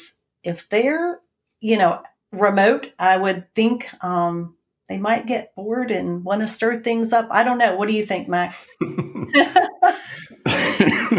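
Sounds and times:
speech: 0:00.4 - 0:11.1
breathy laughter: 0:08.7 - 0:11.1
harsh coughs from allergy season: 0:10.5 - 0:11.1.

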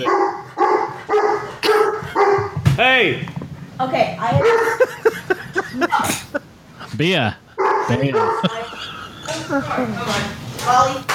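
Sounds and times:
dog barking angrily: 0:00.0 - 0:02.6, 0:04.4 - 0:06.4, 0:07.6 - 0:08.7
speech: 0:03.0 - 0:04.8, 0:07.0 - 0:08.6, 0:09.3 - 0:11.1
laughter: 0:04.4 - 0:10.1.

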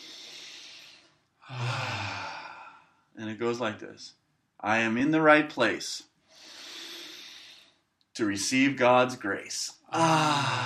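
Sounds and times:
person inhaling softly: 0:00.0 - 0:03.0, 0:06.3 - 0:07.8
speech: 0:03.2 - 0:06.1, 0:08.2 - 0:10.6.

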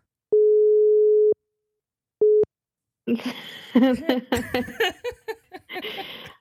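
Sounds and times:
electronic phone-line tone after dropped call: 0:00.3 - 0:01.4
speech: 0:03.1 - 0:06.2
laughter: 0:03.1 - 0:06.3.

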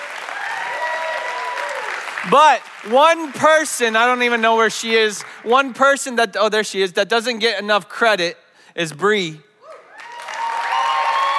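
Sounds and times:
faint cheering: 0:00.0 - 0:02.1, 0:09.6 - 0:11.3
crowd applauding: 0:00.0 - 0:03.9, 0:09.8 - 0:11.3
speech: 0:02.2 - 0:09.5.

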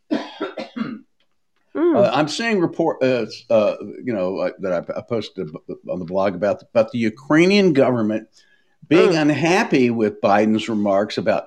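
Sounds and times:
person coughing: 0:00.1 - 0:01.1
speech: 0:01.9 - 0:11.4.

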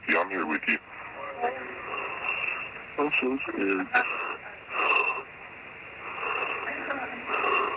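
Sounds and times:
speech: 0:00.3 - 0:00.9, 0:03.0 - 0:04.2
heavy labored raspy breathing over a muffled phone line: 0:01.6 - 0:02.9, 0:03.7 - 0:05.3, 0:05.9 - 0:07.7.

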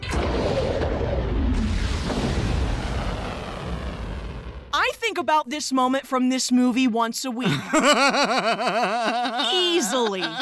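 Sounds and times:
missile launch roar in an animated film: 0:00.0 - 0:04.8
sharp crack: 0:00.0 - 0:04.8
speech: 0:05.1 - 0:10.4
laughter: 0:07.4 - 0:10.4.

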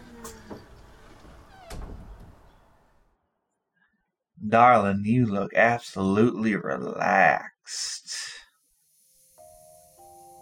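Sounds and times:
quiet squeaky hinge: 0:00.0 - 0:02.8
door opening with a creak and shutting: 0:00.0 - 0:03.1
speech: 0:04.5 - 0:08.4.

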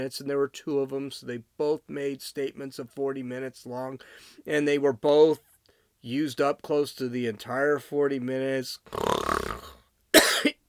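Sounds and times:
speech: 0:00.0 - 0:09.1
harsh rasping cough: 0:10.1 - 0:10.6.

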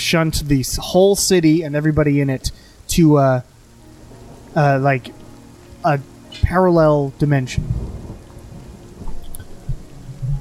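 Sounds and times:
steady rain: 0:00.0 - 0:10.4
speech: 0:00.1 - 0:03.5, 0:04.5 - 0:05.2, 0:05.8 - 0:07.8
deep rumbling thumps: 0:07.6 - 0:10.4.

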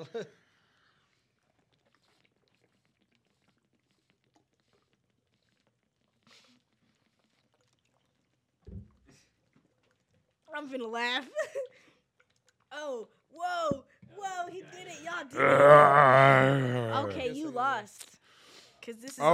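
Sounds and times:
speech: 0:00.0 - 0:00.4, 0:10.6 - 0:11.8, 0:12.7 - 0:18.1, 0:18.8 - 0:19.3
water pouring and splashing: 0:01.2 - 0:10.5
steady low water trickle: 0:01.2 - 0:13.9.

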